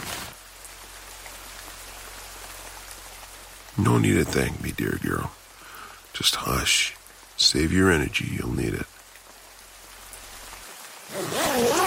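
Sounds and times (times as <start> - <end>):
steady rain falling beneath an oak tree: 0.0 - 11.8
speech: 3.8 - 5.4, 6.2 - 8.9.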